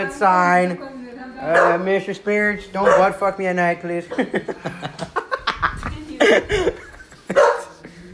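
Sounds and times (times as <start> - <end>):
speech: 0.0 - 5.2
female dog barking at a hallway: 1.5 - 1.9, 2.8 - 3.2, 7.3 - 7.7
laughter-like voices: 4.1 - 8.1.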